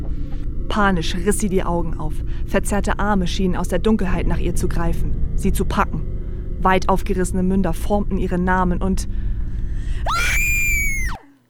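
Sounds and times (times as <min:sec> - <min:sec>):
low rumble: 0:00.0 - 0:10.1
speech: 0:00.7 - 0:06.0, 0:06.6 - 0:09.2
woman screaming in terror: 0:10.1 - 0:11.3.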